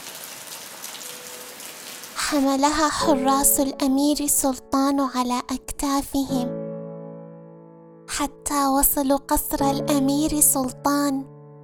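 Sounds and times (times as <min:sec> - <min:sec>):
light rain falling in a garden: 0:00.0 - 0:02.9
raindrops pattering on a surface: 0:00.0 - 0:04.4
speech: 0:02.3 - 0:06.6, 0:08.2 - 0:11.3.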